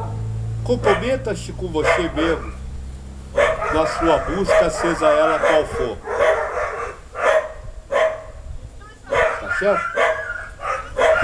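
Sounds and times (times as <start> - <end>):
speech: 0.7 - 2.6, 3.7 - 6.2, 9.6 - 10.0
dog barking: 0.8 - 1.2, 1.8 - 2.6, 3.4 - 8.4, 9.1 - 11.2.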